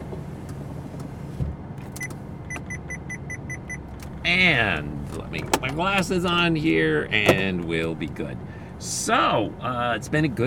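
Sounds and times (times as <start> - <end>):
steady low road rumble through open car windows: 0.0 - 10.4
speech: 4.3 - 10.4.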